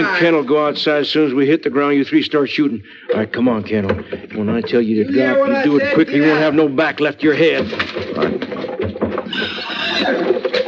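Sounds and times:
speech: 0:00.0 - 0:08.6, 0:09.3 - 0:10.2
horses whinnying and snorting: 0:09.3 - 0:10.6.

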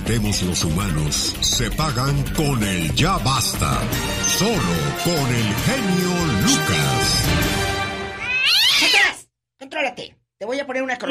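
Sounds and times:
speech: 0:00.1 - 0:07.7, 0:09.8 - 0:11.0
cat meowing: 0:08.1 - 0:09.2.

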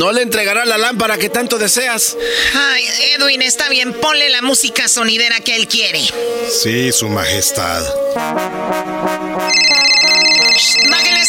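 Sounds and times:
speech: 0:00.0 - 0:09.8
melodic electronic phone ringtone: 0:09.4 - 0:11.2
high steady chiming tones: 0:09.5 - 0:11.2.

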